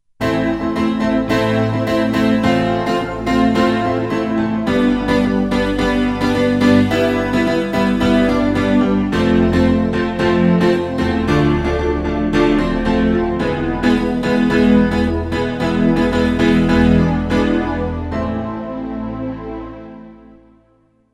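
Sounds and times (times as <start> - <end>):
piano with chorus effect: 0.2 - 21.0.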